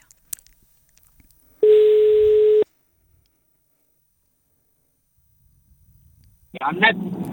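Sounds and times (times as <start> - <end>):
ringback tone of an outgoing live phone call: 1.6 - 2.7.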